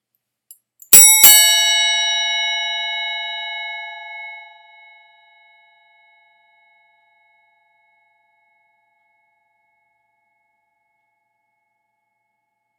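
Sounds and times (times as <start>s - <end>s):
brass bicycle bell ding dong: 0.9s - 4.4s.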